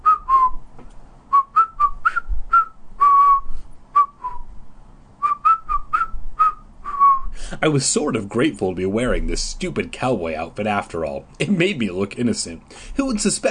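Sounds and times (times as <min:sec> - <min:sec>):
person whistling a tune: 0:00.0 - 0:00.6, 0:01.3 - 0:04.5, 0:05.2 - 0:07.4
speech: 0:07.6 - 0:13.5.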